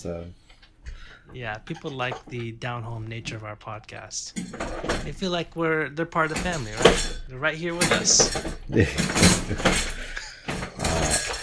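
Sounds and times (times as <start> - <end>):
speech: 0.0 - 0.4, 1.3 - 9.9
dog's food bowl clanking and scraping across the floor: 1.4 - 2.6, 4.3 - 5.2, 6.2 - 11.4.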